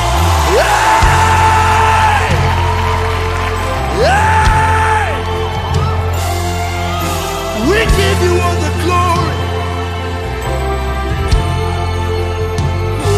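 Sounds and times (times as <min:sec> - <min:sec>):
rising whoops from the crowd: 0:00.0 - 0:10.6
large crowd screaming and cheering loudly: 0:00.0 - 0:13.1
steady deep musical drone: 0:00.0 - 0:13.1.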